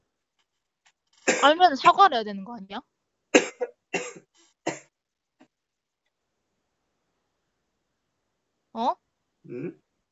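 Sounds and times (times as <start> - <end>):
person coughing: 1.3 - 1.6, 3.4 - 4.8, 9.5 - 9.7
speech: 1.4 - 2.9, 8.8 - 9.8.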